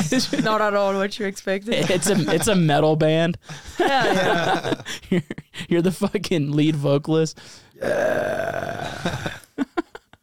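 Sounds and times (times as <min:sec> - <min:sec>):
speech: 0:00.1 - 0:09.4
laughter: 0:01.7 - 0:02.8, 0:03.5 - 0:05.4
long gravelly burp-like croak: 0:07.8 - 0:09.4.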